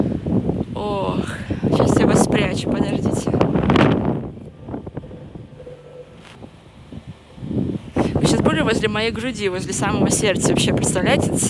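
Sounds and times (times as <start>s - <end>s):
strong gusty wind buffeting the microphone outdoors: 0.0s - 11.4s
speech: 0.8s - 3.9s, 8.7s - 11.4s
quieter outdoor rustle: 2.6s - 8.2s.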